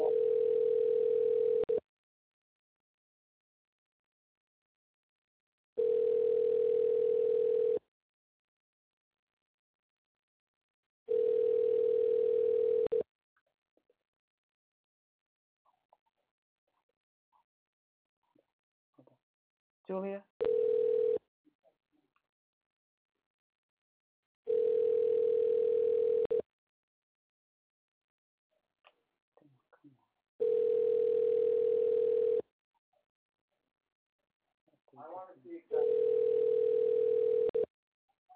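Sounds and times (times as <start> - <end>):
phone ringback tone, call unanswered: 0.0 - 1.8, 5.8 - 7.8, 11.1 - 13.0, 20.4 - 21.2, 24.5 - 26.4, 30.4 - 32.4, 35.7 - 37.7
speech: 19.9 - 20.3.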